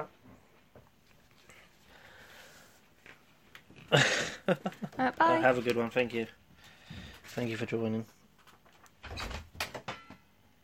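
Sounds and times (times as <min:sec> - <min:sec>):
speech: 0:03.9 - 0:06.4, 0:07.4 - 0:08.2
sharp clunks and knocks of a door: 0:09.0 - 0:10.2.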